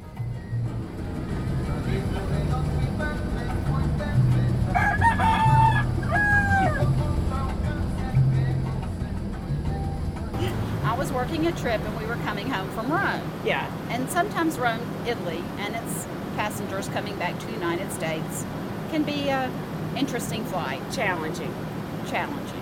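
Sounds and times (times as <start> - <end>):
low rumble of a moving bus in Panama: 0.0 - 22.6
rooster crowing on a bus in Panama: 4.7 - 7.1
speech: 11.3 - 22.6.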